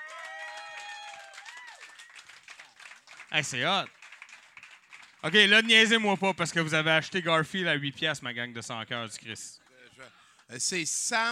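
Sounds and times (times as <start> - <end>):
whooping and cheering voices: 0.0 - 2.2
crowd applause for a performing artist: 0.0 - 6.8
speech: 3.3 - 4.0, 5.2 - 11.2.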